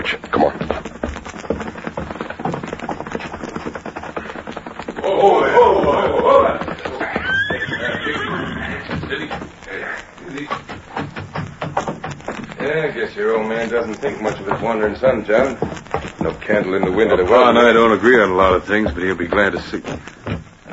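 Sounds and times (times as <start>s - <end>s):
horse snorting: 0.0s - 13.0s
horse hooves clopping: 0.0s - 20.7s
steady rustling background: 0.0s - 20.7s
horse neighing: 5.0s - 10.0s
speech: 13.0s - 20.1s.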